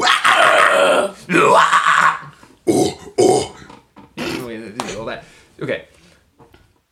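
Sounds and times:
death metal vocal growl: 0:00.0 - 0:03.6.

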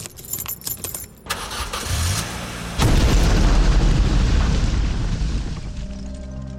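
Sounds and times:
keys jingling: 0:00.0 - 0:01.6
car engine turning over: 0:01.2 - 0:04.0
massive car bomb explosion with debris rumble: 0:02.8 - 0:05.9.

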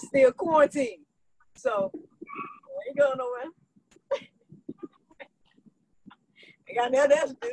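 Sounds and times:
speech: 0:00.1 - 0:02.0, 0:03.0 - 0:03.5, 0:06.8 - 0:07.5
dog giving yips and grunts: 0:02.3 - 0:02.7.

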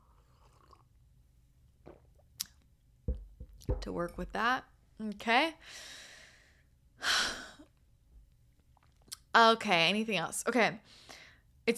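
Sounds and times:
person sipping tea: 0:00.0 - 0:01.0, 0:01.8 - 0:02.6
low thud: 0:03.1 - 0:04.4
speech: 0:03.7 - 0:06.1, 0:09.4 - 0:11.7.

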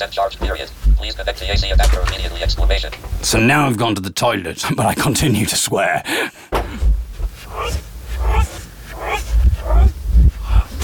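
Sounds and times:
speech: 0:00.0 - 0:06.9
dog barking: 0:07.5 - 0:10.0.

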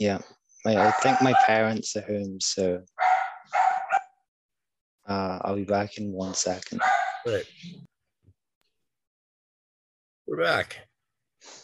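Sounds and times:
speech: 0:00.0 - 0:02.9, 0:05.1 - 0:07.9, 0:10.3 - 0:11.6
pet dog barking at home: 0:00.8 - 0:01.6, 0:03.0 - 0:04.2, 0:06.8 - 0:07.3.

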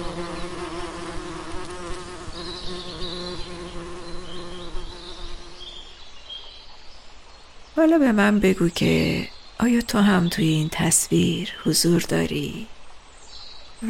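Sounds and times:
bees buzzing: 0:00.0 - 0:05.7
speech: 0:07.8 - 0:12.7.

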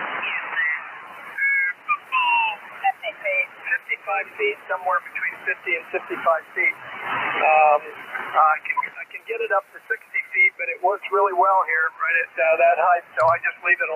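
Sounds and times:
ham radio receiver hissing with static while being tuned: 0:00.0 - 0:13.9
garbled voices on ham radio receiver: 0:00.2 - 0:06.8, 0:07.4 - 0:13.9
speech: 0:04.2 - 0:13.9.

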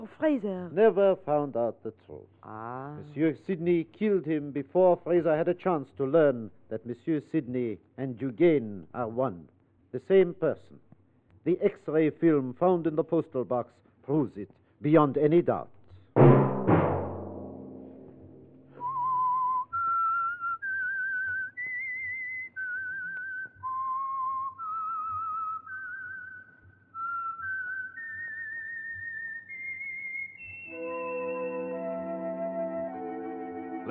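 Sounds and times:
speech: 0:00.1 - 0:10.8, 0:11.4 - 0:16.3
loud opening hit: 0:16.2 - 0:18.7
person whistling a slow eerie melody: 0:18.7 - 0:33.9
soft orchestral chord: 0:30.7 - 0:33.9.

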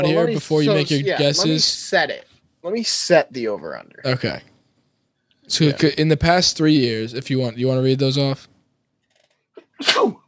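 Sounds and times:
speech: 0:00.0 - 0:04.5, 0:05.5 - 0:08.5, 0:09.8 - 0:10.2
single sharp sneeze with a broad hissy spray: 0:09.6 - 0:10.2.

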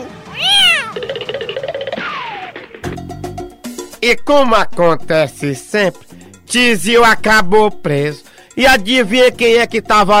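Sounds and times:
cat meowing and yowling: 0:00.3 - 0:01.0
speech: 0:04.0 - 0:10.1.

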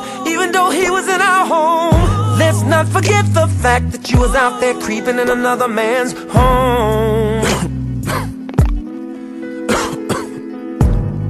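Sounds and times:
speech: 0:00.4 - 0:07.4
person coughing harshly: 0:07.4 - 0:08.4, 0:09.7 - 0:10.5.

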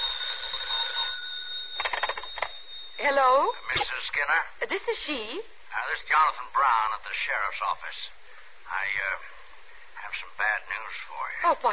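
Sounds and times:
telephone ringing with electronic trill: 0:00.0 - 0:04.1
speech: 0:03.0 - 0:09.3, 0:10.0 - 0:11.7.

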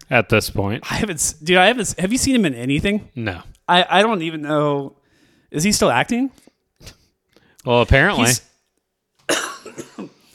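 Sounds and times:
speech: 0:00.1 - 0:07.0, 0:07.6 - 0:08.5, 0:09.3 - 0:09.9
harsh cough: 0:09.3 - 0:10.3.

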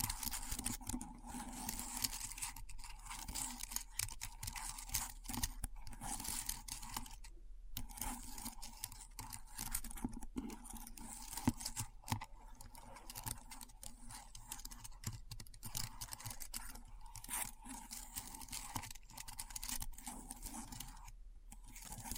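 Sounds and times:
keyboard typing with crisp clicks and clacks: 0:00.0 - 0:07.2, 0:07.8 - 0:22.1.

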